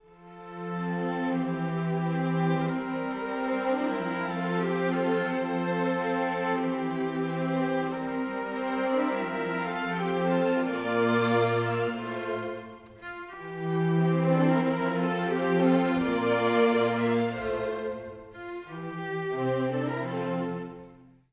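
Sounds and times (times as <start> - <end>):
classical orchestral strings: 0.0 - 21.3.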